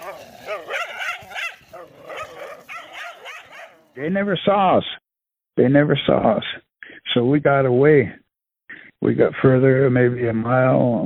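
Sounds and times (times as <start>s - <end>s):
dogs barking, yipping and snarling in a fight: 0.0s - 4.0s
speech: 4.0s - 5.0s, 5.6s - 8.2s, 9.0s - 11.0s.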